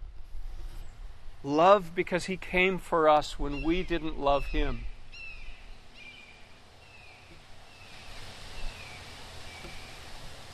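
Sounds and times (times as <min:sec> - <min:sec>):
steady rustling hiss: 0:00.0 - 0:10.5
speech: 0:01.4 - 0:04.9
several birds calling outdoors: 0:03.1 - 0:10.2.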